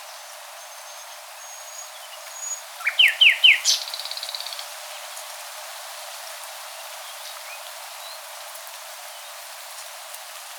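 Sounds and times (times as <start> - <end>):
common nightingale Luscinia megarhynchos song phrase of slurred whistles: 1.5 - 4.4.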